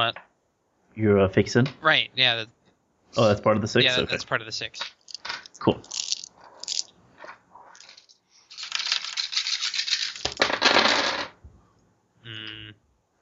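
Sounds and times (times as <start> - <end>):
speech: 0.0 - 0.2, 1.0 - 5.0, 5.6 - 6.0
six dice rolling across a table for a tabletop role-playing game check: 4.8 - 11.4.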